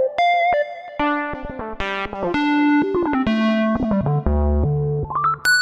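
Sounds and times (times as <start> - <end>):
square wave solo on Roland V-Synth factory patch: 0.1 - 5.5.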